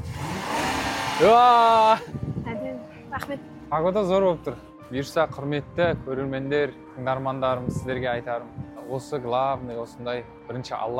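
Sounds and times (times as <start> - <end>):
car engine revving as the driver presses the gas: 0.0 - 2.0
speech: 1.2 - 2.2, 3.2 - 10.9.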